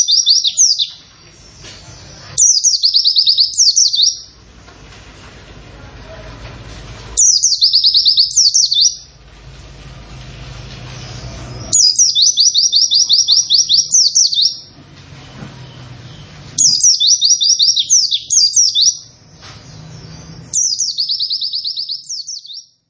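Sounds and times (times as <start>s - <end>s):
Oriental white-eye rapid descending chirping song: 0.0s - 4.4s, 7.2s - 9.2s, 10.9s - 14.8s, 15.6s - 22.8s.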